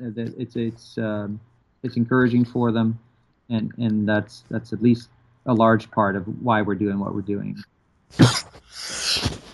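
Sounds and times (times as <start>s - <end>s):
speech: 0.0s - 9.5s
person coughing: 8.2s - 8.6s.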